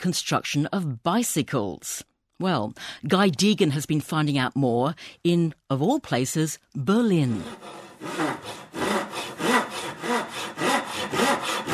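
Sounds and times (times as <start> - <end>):
speech: 0.0 - 9.0
hand saw cutting through bamboo: 7.3 - 11.7.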